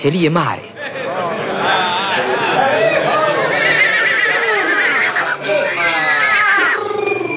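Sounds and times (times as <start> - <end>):
speech: 0.0 - 1.9
laughter: 0.7 - 6.9
crowd murmur and indistinct voices at a horse fair: 0.7 - 7.3
tall thin black horse neighing and whinnying at a horse fair in Döbrück: 3.0 - 7.0.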